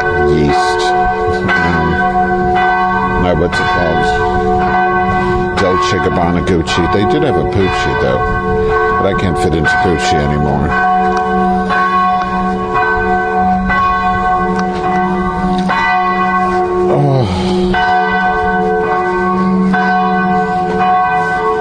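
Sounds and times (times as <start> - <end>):
church bells ringing: 0.0 - 21.6
speech: 5.9 - 11.5
brief voice exclamation: 16.9 - 17.8.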